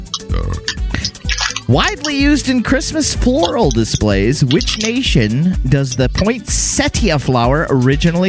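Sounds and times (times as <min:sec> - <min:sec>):
loud deep gurgling burps: 0:00.2 - 0:01.1
speech: 0:01.7 - 0:08.2.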